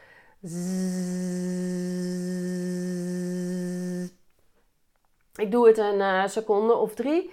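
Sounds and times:
speech: 0.4s - 1.1s, 5.4s - 7.3s
voice buzzing zzz as a voice exercise: 0.4s - 4.2s.

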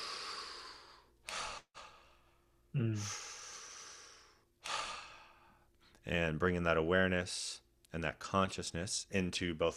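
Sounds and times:
long relaxed exhale during breathwork practice: 0.0s - 2.2s, 2.9s - 5.6s
deep activating breath in during breathwork practice: 0.0s - 5.9s
speech: 2.8s - 3.2s, 6.0s - 9.7s.

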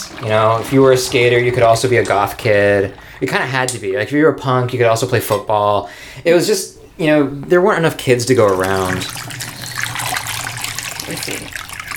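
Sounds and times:
darkroom stop bath solution poured into a sink or tray: 0.0s - 4.9s, 8.0s - 11.9s
speech: 0.2s - 9.5s, 11.1s - 11.6s.

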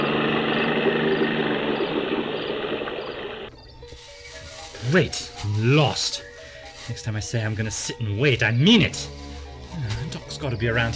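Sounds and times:
motorboat engine on a river running: 0.0s - 4.0s
river water noise: 0.0s - 6.3s
speech: 4.9s - 6.3s, 6.9s - 9.2s, 9.8s - 10.9s.

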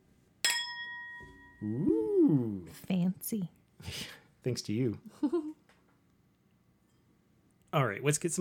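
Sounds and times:
glasses clinking in a toast: 0.4s - 1.6s
speech: 1.6s - 5.5s, 7.7s - 8.3s.

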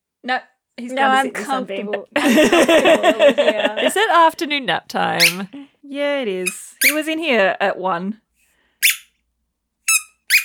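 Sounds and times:
speech: 0.2s - 8.2s
laughter: 1.1s - 4.3s
squeaky toy being chewed by a whippet puppy: 5.1s - 5.5s, 6.4s - 7.1s, 8.8s - 9.2s, 9.8s - 10.4s.

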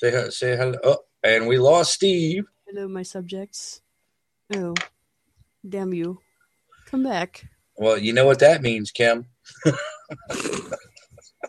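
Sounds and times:
laughter: 0.0s - 1.9s, 7.8s - 11.4s
speech: 0.0s - 3.8s, 4.5s - 4.9s, 5.6s - 6.2s, 6.9s - 10.9s
person coughing: 9.6s - 10.8s.

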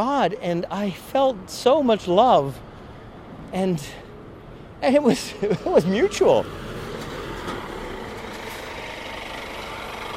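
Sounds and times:
speech: 0.0s - 2.7s, 3.5s - 4.0s, 4.8s - 6.6s
heavy truck engine idling on the road: 2.0s - 10.1s.

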